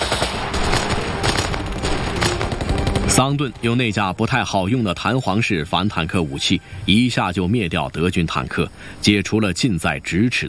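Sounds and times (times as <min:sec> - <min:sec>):
Sten submachine gun automatic fire in a wartime battle against German tank crews: 0:00.0 - 0:03.8
speech: 0:03.2 - 0:10.4.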